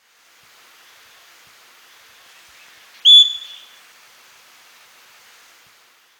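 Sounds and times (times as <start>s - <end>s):
Pionus maximiliani whistling: 3.1s - 3.8s.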